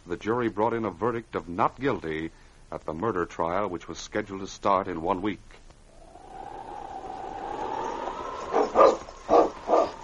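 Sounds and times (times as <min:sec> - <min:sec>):
speech: 0:00.1 - 0:05.6
faint whistling drone: 0:05.9 - 0:10.0
sled team of huskies barking: 0:07.9 - 0:10.0.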